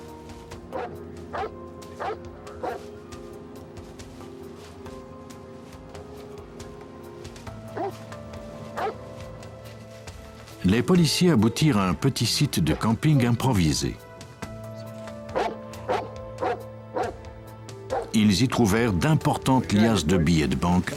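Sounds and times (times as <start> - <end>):
police sniffer dog barking while tracking suspects: 0.7 - 2.8, 7.8 - 8.0, 8.8 - 9.0, 15.3 - 17.2, 17.9 - 18.1
speech: 0.7 - 3.0, 10.6 - 14.1, 18.2 - 20.9.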